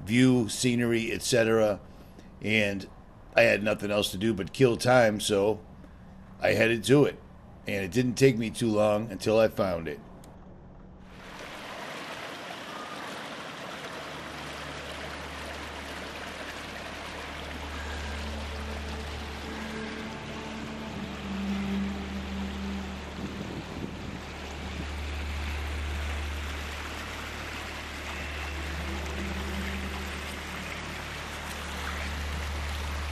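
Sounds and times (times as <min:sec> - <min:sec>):
speech: 0:00.1 - 0:05.7, 0:06.4 - 0:10.1
waterfall pouring into a swimming hole: 0:11.1 - 0:33.1.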